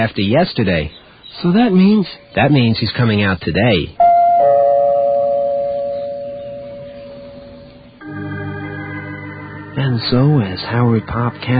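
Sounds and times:
speech: 0:00.0 - 0:04.0, 0:09.9 - 0:11.5
household doorbell chiming: 0:04.0 - 0:07.9.

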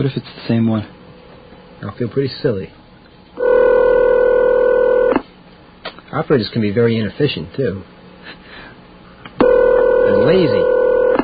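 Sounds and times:
speech: 0:00.0 - 0:01.0, 0:01.8 - 0:02.8, 0:06.1 - 0:08.4, 0:10.3 - 0:10.7
loud steady telephone tone: 0:03.4 - 0:05.2, 0:09.4 - 0:11.2.

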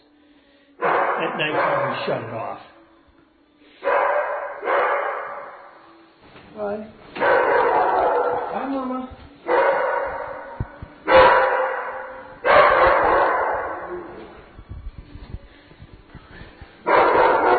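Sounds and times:
several dogs barking in a kennel: 0:00.8 - 0:02.5, 0:03.8 - 0:05.9, 0:07.2 - 0:14.5, 0:16.8 - 0:17.5
speech: 0:01.2 - 0:02.7, 0:06.6 - 0:07.0, 0:08.6 - 0:09.2.

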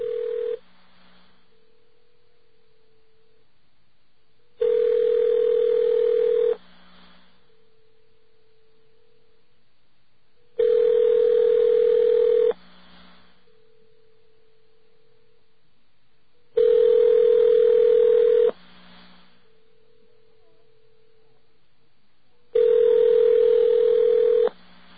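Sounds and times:
telephone line tone while dialing a call: 0:00.0 - 0:00.6, 0:04.6 - 0:06.6, 0:10.6 - 0:12.6, 0:16.6 - 0:18.6, 0:22.6 - 0:24.6
faint steady humming tone: 0:00.0 - 0:24.9.

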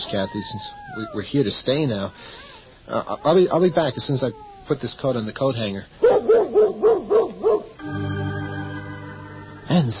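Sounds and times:
speech: 0:00.0 - 0:07.0, 0:09.7 - 0:09.9
dog barking: 0:06.0 - 0:07.8
steady sustained musical drone: 0:07.8 - 0:09.9.

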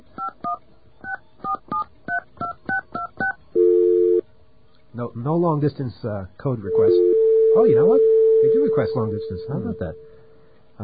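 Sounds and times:
steady telephone tone: 0:03.6 - 0:04.2, 0:06.7 - 0:10.3
speech: 0:05.0 - 0:10.1.

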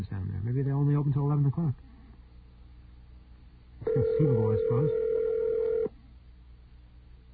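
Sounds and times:
speech: 0:00.0 - 0:01.9, 0:03.9 - 0:05.1
ringback tone of an unanswered outgoing telephone call: 0:03.8 - 0:05.9.

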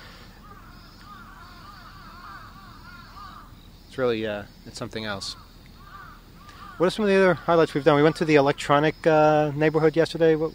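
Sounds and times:
crow cawing: 0:00.0 - 0:03.7, 0:05.2 - 0:08.8
constant noisy outdoor background: 0:00.0 - 0:10.5
speech: 0:04.0 - 0:05.5, 0:06.8 - 0:10.5.

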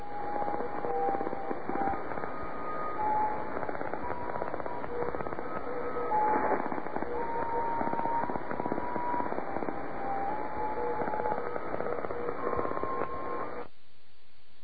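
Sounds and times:
radio tone code of short musical tones: 0:00.0 - 0:13.7
heavy crackling radio static and interference: 0:00.0 - 0:14.6.

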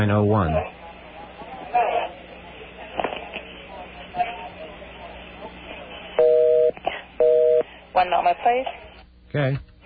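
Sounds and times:
speech: 0:00.0 - 0:00.8, 0:08.0 - 0:09.7
low murmur of voices: 0:00.0 - 0:08.9
telephone dialing tones while connecting a call: 0:06.2 - 0:07.6.

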